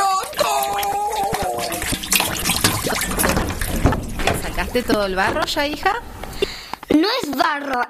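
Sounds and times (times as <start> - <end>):
water rushing and splashing: 0.1 - 6.8
speech: 4.7 - 6.1, 7.0 - 7.8.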